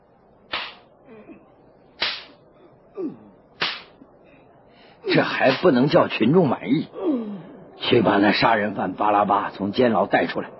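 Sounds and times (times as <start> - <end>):
loud sharp whip cracks: 0.5 - 0.9, 2.0 - 2.4, 3.6 - 4.0, 5.5 - 5.7
speech: 3.0 - 3.2, 5.1 - 7.0, 7.9 - 10.5.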